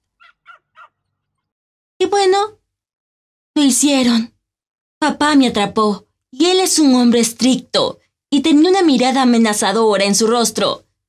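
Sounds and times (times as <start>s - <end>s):
female puppy barking: 0.2s - 1.0s
speech: 2.1s - 2.6s, 3.6s - 4.3s, 5.0s - 10.8s.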